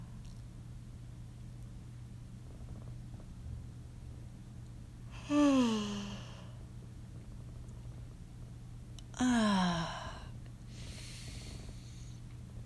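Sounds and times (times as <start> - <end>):
steady low hum: 0.0 - 12.6
person yawning with a breathy intake and falling groan: 5.2 - 6.4, 9.2 - 10.3.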